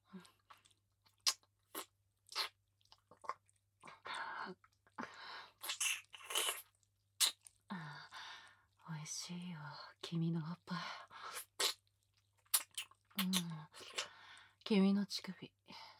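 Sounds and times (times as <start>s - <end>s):
mouth gently biting and chewing: 0.5s - 3.5s, 5.6s - 7.5s, 11.3s - 11.8s, 12.4s - 14.0s
speech: 9.3s - 11.0s, 13.2s - 14.0s, 14.7s - 15.6s.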